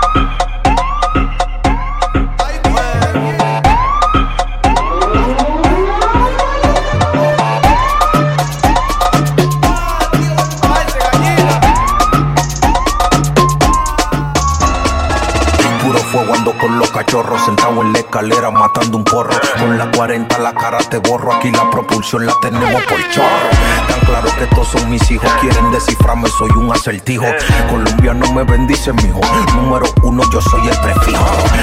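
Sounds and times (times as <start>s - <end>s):
police siren wailing: 0.0s - 18.8s, 21.2s - 26.9s
heavy pounding beat with deep bass: 0.0s - 22.4s, 23.5s - 26.8s, 27.4s - 31.6s
speech: 21.4s - 31.6s.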